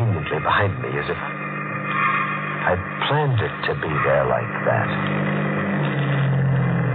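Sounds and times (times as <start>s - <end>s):
car engine humming as the car stops: 0.0s - 6.9s
speech: 0.4s - 1.4s, 2.6s - 5.4s.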